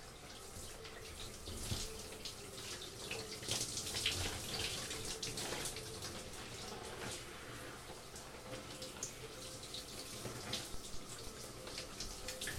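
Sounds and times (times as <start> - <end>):
running shower water: 0.0 - 12.5.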